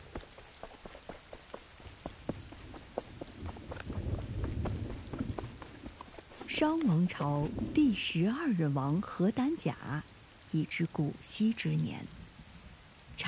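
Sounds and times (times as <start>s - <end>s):
low windy rumble: 0.0s - 9.2s
heavy rain with dense drops striking hard surfaces: 0.0s - 13.2s
speech: 6.6s - 12.2s.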